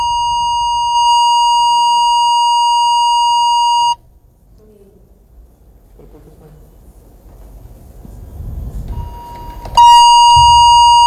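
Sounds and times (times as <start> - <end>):
steady electronic telephone line tone of a failed call: 0.0 - 4.0, 9.0 - 11.0
faint low rumbling: 0.0 - 11.0.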